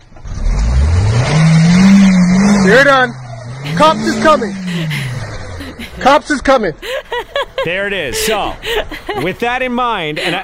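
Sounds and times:
car engine revving while stuck in snowbank: 0.0 - 6.7
speech: 2.7 - 5.1, 6.0 - 10.4
laughter: 3.6 - 10.4.

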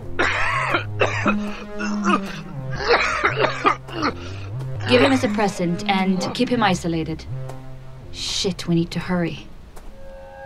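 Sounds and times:
low steady drone: 0.0 - 10.4
rough raspy coughing: 0.1 - 6.4
speech: 0.7 - 1.6, 5.1 - 7.4, 8.2 - 9.5.

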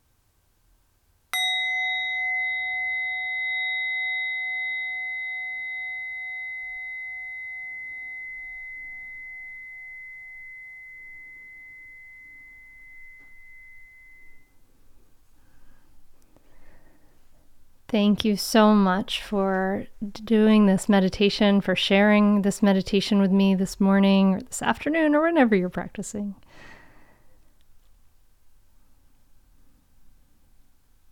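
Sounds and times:
meditation bell struck and ringing: 1.4 - 14.7
soft breathing: 14.8 - 17.5, 26.4 - 27.6
speech: 17.9 - 26.7.

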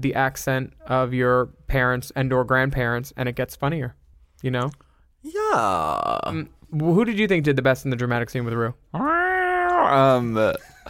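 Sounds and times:
speech: 0.0 - 9.1, 9.9 - 10.8
person imitating a cat meow: 5.3 - 6.5, 8.9 - 10.2.

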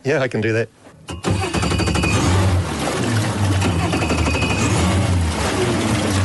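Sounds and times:
boat's twin outboard motors starting up and roaring: 1.2 - 6.2.

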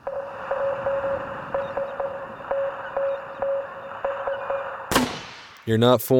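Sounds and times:
Morse code tone beeping an SOS pattern: 0.0 - 4.9
radio static hiss: 0.0 - 4.9
speech: 5.7 - 6.1.

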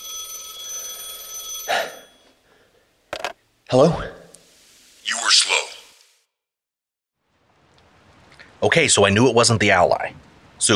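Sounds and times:
telephone ringing with shrill electronic trill: 0.0 - 2.4
speech: 3.7 - 4.1, 8.6 - 10.7.

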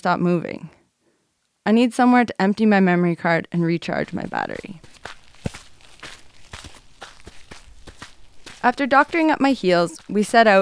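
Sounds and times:
speech: 0.0 - 0.8, 1.6 - 5.0, 8.6 - 10.5
hikers' footsteps crunching on a dirt road in the early morning: 3.8 - 10.5.

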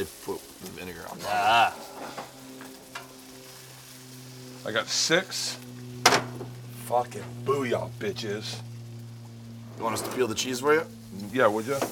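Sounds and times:
speech: 0.0 - 2.5, 4.6 - 5.7, 6.9 - 8.7, 9.8 - 11.9
eggs frying in oil on a griddle: 0.0 - 6.9
faint tonal hum: 0.0 - 11.9.

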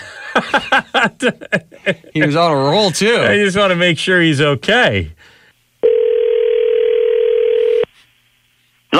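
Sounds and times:
laughter: 0.0 - 2.3
speech: 0.4 - 6.1
telephone dial tone: 5.8 - 7.9.

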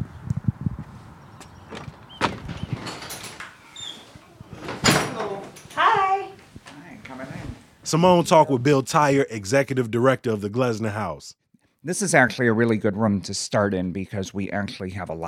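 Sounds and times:
large heavy front door opening with clunks and thuds: 1.4 - 6.2
speech: 7.9 - 15.2.

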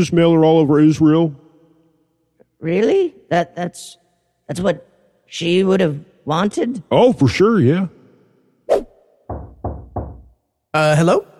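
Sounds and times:
speech: 0.0 - 1.4, 2.6 - 8.0, 10.8 - 11.3
knocking on a door by someone delivering a package: 9.3 - 10.4.

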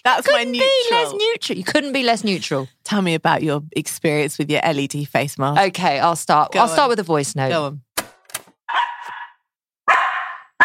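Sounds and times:
speech: 0.0 - 7.9
pet dog barking sharply: 8.7 - 10.6.

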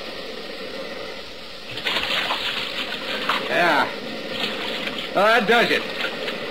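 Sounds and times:
water splashing as a boat drives up onto an island beach: 1.7 - 6.4
speech: 5.2 - 6.0.

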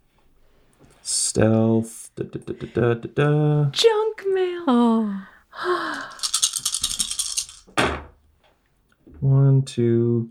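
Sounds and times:
speech: 1.0 - 5.9, 9.6 - 10.2
dice rattling and clattering: 5.9 - 7.7.

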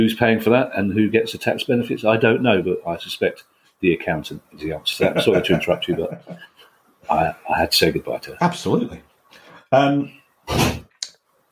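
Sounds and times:
speech: 0.0 - 9.1, 9.7 - 10.8
laughter: 4.9 - 6.6
door swinging shut with a muffled thud: 10.5 - 10.9.

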